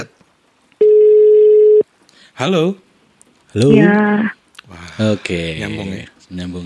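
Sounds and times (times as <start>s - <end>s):
telephone dial tone while placing a call: 0.8s - 1.8s
speech: 2.4s - 2.8s, 3.5s - 6.6s.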